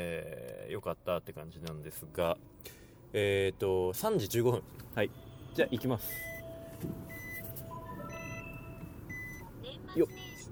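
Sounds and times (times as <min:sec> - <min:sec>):
car engine rumble after snowfall: 0:00.0 - 0:10.5
speech: 0:00.2 - 0:07.2, 0:10.0 - 0:10.5
high electronic beeps and tones: 0:06.1 - 0:10.5.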